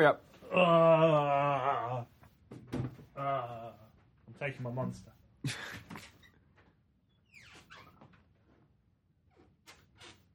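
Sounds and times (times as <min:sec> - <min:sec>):
speech: 0:00.0 - 0:02.2, 0:04.4 - 0:06.1
door creaking as it swings: 0:06.0 - 0:08.3, 0:09.3 - 0:10.3.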